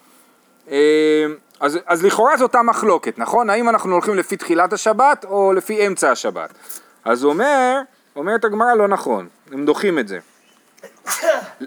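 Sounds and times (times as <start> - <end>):
speech: 0.7 - 11.6
person sneezing: 10.8 - 11.6.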